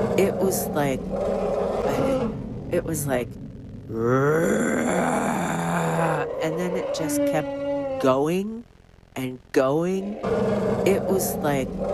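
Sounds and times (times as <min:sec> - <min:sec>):
speech: 0:00.2 - 0:08.6, 0:09.2 - 0:11.9
man imitating an elephant roar with his voice: 0:03.9 - 0:08.3.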